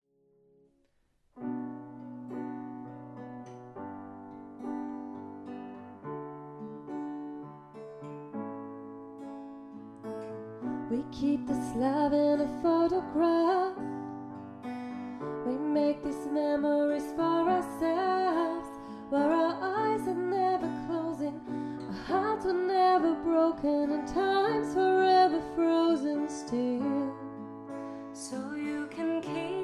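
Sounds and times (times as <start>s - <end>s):
acoustic cover sung by a woman: 10.8s - 14.0s, 15.4s - 29.6s.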